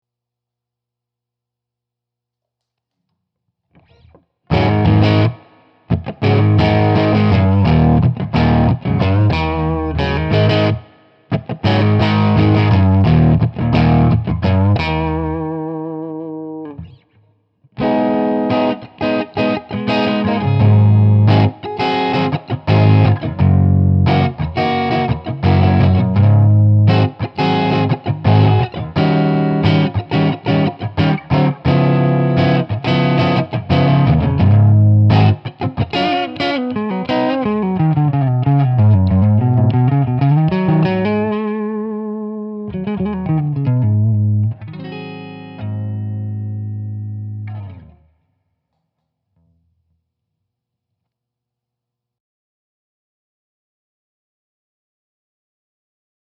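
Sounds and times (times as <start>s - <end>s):
clean tone through Marshall DSL amplifier: 3.8s - 17.1s, 17.8s - 48.1s.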